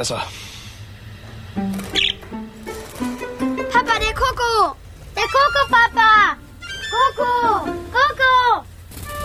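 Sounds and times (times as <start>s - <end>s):
speech: 0.0s - 0.5s, 4.0s - 8.7s
pet bird chirping as it is let out of its cage: 1.6s - 2.6s, 5.1s - 7.6s.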